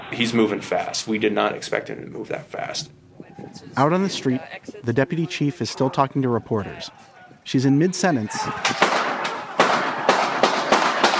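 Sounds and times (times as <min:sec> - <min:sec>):
speech: 0:00.1 - 0:08.9
gunshots echoing on a street: 0:08.4 - 0:11.1.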